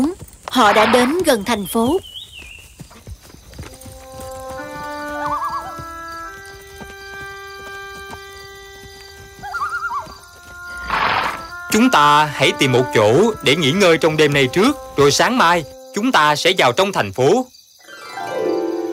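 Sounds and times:
speech: 0.0 - 2.1, 11.8 - 17.6
horse hooves clip-clopping during a ride: 0.0 - 16.0
horse neighing during a ride: 9.4 - 11.9.

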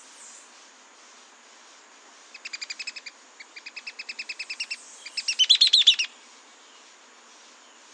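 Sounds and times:
mouse-colored tyrannulet Phaeomyias murina wagae calling: 2.4 - 6.1.

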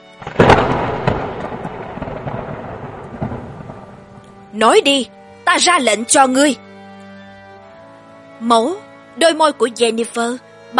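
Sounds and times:
thunder rumbling after a lightning flash: 0.2 - 5.1
speech: 4.6 - 6.6, 8.4 - 10.7.

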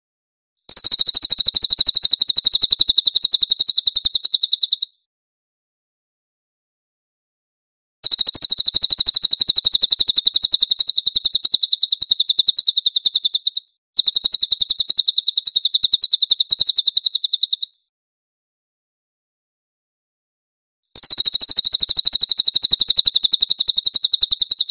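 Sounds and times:
cililin bird singing shrill trill: 0.7 - 5.1, 8.0 - 17.9, 21.0 - 24.6.

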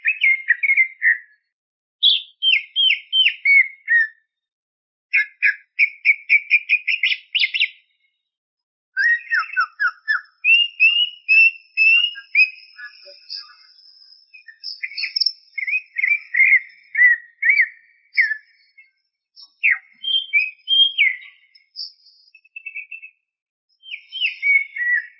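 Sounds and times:
greater green leafbird song: 0.0 - 4.3, 5.1 - 8.3, 9.0 - 25.1.

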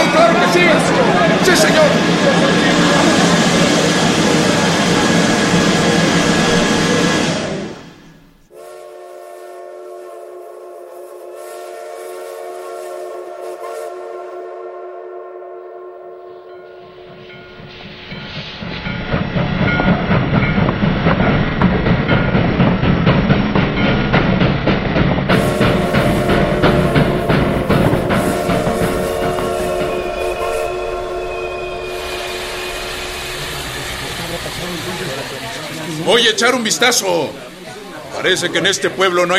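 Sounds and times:
steam train approaching, rumbling and hissing: 0.0 - 15.0, 16.8 - 39.3
steam train whistle: 8.5 - 17.1, 25.3 - 35.8
speech: 36.3 - 37.5, 38.2 - 39.3.

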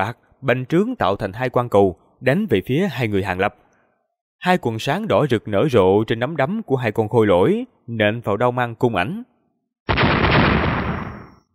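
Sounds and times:
speech: 0.0 - 3.6, 4.4 - 9.3
loud explosion: 9.9 - 11.4.

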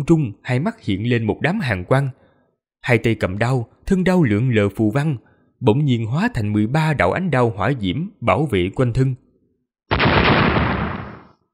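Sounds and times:
speech: 0.0 - 2.2, 2.8 - 9.2
explosion sound effect, loud roaring blast: 9.9 - 11.4.

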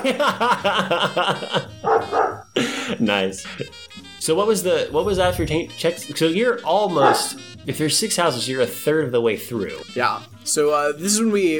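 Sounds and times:
speech: 0.0 - 1.7, 3.0 - 11.5
laughter: 0.0 - 1.8, 2.6 - 3.8
several dogs barking next door: 1.6 - 2.6, 6.9 - 7.5
longer high-pitched dog yelps: 1.9 - 2.4.

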